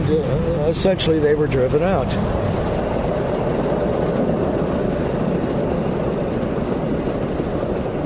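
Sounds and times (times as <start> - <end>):
low rumbling machinery like a passing train or aircraft: 0.0 - 8.0
traffic noise: 0.0 - 8.0
speech: 0.1 - 2.6.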